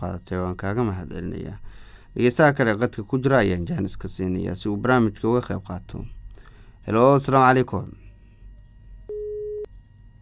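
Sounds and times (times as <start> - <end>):
speech: 0.0 - 6.2, 6.8 - 8.0
low hum: 0.0 - 10.2
telephone busy tone after a caller's line is cut off: 9.1 - 10.2.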